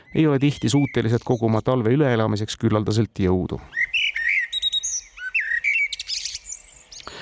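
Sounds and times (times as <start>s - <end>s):
blackbird singing a rich fluting song: 0.0s - 2.6s, 3.6s - 7.2s
speech: 0.1s - 3.9s.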